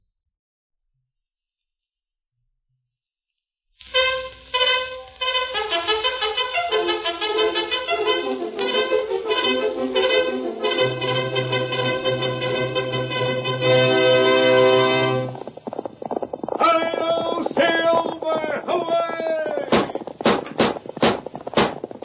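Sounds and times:
orchestral music with sustained brass-like chords: 3.9s - 15.4s
galloping horse hoofbeats: 4.6s - 22.0s.

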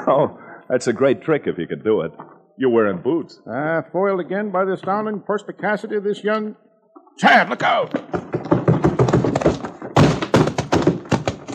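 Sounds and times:
speech: 0.1s - 6.6s, 7.2s - 8.2s
loud clattering and thudding: 7.0s - 11.5s
man flung through swinging saloon doors: 7.6s - 11.5s.

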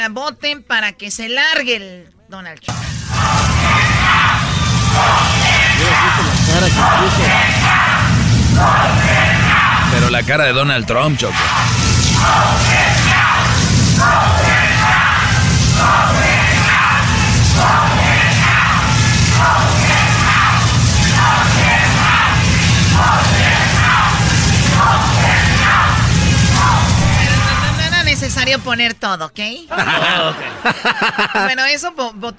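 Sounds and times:
speech: 0.0s - 7.9s, 8.6s - 9.0s, 10.1s - 13.3s, 14.0s - 15.0s, 15.8s - 16.3s, 19.4s - 19.8s, 28.2s - 32.3s
large crowd chanting: 2.7s - 10.5s, 11.1s - 28.7s
laughter: 5.6s - 7.4s, 29.7s - 31.8s.

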